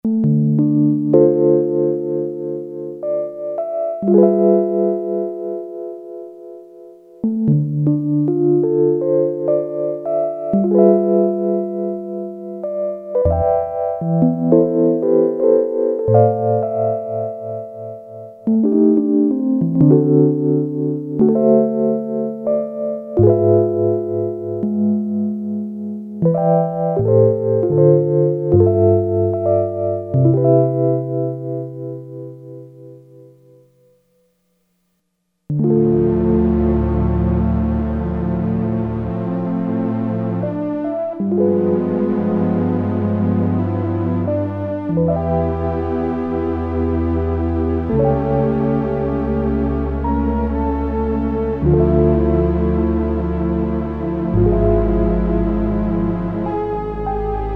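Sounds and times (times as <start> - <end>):
mellow Rhodes patch on a Roland Jupiter-8 synthesizer: 0.0 - 33.8, 35.5 - 57.5.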